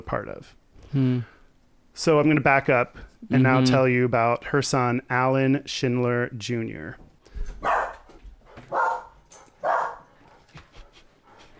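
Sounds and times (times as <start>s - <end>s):
speech: 0.0s - 1.4s, 2.0s - 7.0s
dog barking: 7.6s - 8.1s, 8.7s - 10.1s.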